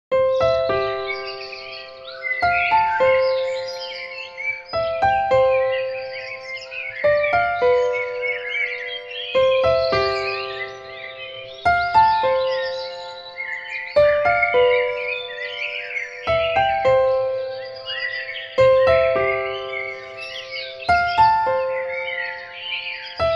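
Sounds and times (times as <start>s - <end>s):
birds: 0.1s - 23.3s
calm piano melody: 0.1s - 23.3s.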